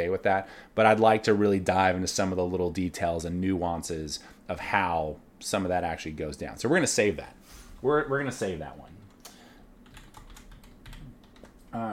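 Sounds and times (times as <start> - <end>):
speech: 0.0 - 9.0, 11.7 - 11.9
rapid typing on a computer keyboard: 9.8 - 11.7.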